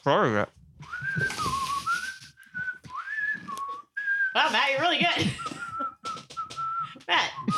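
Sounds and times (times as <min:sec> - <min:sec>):
speech: 0:00.0 - 0:01.4, 0:04.4 - 0:05.6
person whistling a tune with a mouth full of food: 0:00.8 - 0:04.6, 0:05.2 - 0:07.5
soft rustling: 0:00.9 - 0:03.8.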